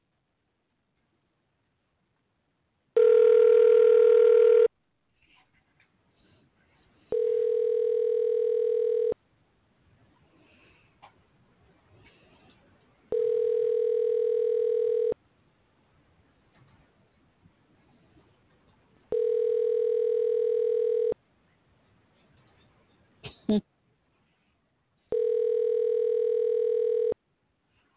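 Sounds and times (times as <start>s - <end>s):
phone ringback tones of an outgoing call on a switchboard: 3.0s - 4.7s, 7.1s - 9.2s, 13.1s - 15.2s, 19.1s - 21.2s, 25.1s - 27.2s
phone line hiss: 7.1s - 9.2s, 13.1s - 15.2s, 19.1s - 21.2s, 25.1s - 27.2s.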